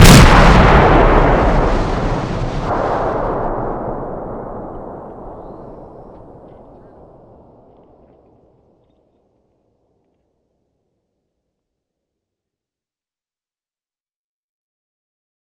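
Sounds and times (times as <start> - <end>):
huge explosion: 0.0 - 7.7.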